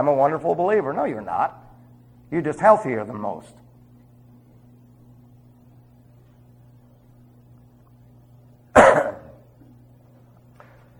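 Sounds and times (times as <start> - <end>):
speech: 0.0 - 1.6, 2.3 - 3.6
single sharp cough with a rasp: 8.8 - 9.5.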